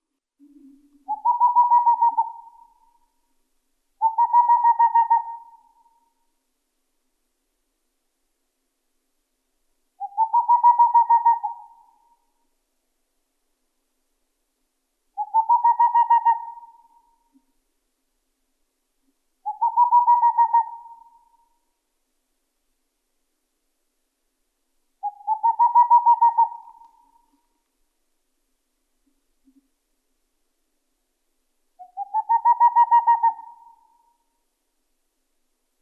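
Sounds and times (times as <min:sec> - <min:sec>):
Tengmalm's owl: 0:00.4 - 0:03.2, 0:04.0 - 0:06.2, 0:10.0 - 0:12.4, 0:15.2 - 0:17.5, 0:19.4 - 0:21.7, 0:25.0 - 0:27.6, 0:31.8 - 0:34.4.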